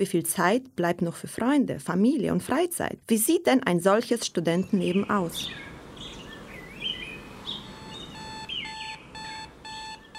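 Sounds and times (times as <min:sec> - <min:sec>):
speech: 0:00.0 - 0:05.7
bird chirps: 0:04.6 - 0:10.1
steady ambient hiss: 0:04.8 - 0:10.1
digital alarm clock ringing with electronic tones: 0:07.6 - 0:10.1.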